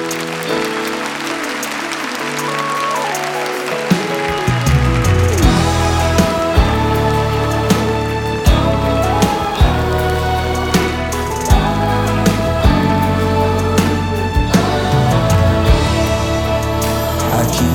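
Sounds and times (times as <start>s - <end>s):
sustained keyboard chords: 0.0s - 17.7s
worshipping crowd applauding: 0.0s - 17.7s
bass line: 4.5s - 17.7s.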